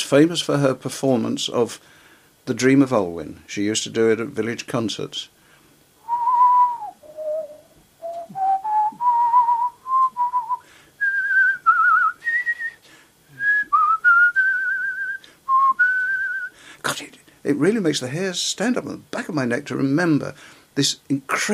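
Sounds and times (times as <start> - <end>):
speech: 0.1 - 5.4, 17.5 - 21.5
breaths between phrases: 1.8 - 2.4, 5.4 - 5.8, 10.6 - 11.0, 12.8 - 13.5, 15.2 - 15.5, 16.5 - 17.4, 20.4 - 20.8
person whistling a flowing melody: 6.0 - 12.8, 13.4 - 16.6.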